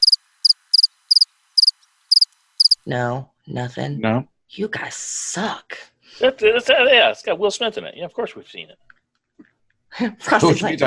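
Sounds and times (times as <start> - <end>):
crickets chirping sound effect: 0.0 - 2.8
speech: 2.8 - 8.8, 9.9 - 10.8.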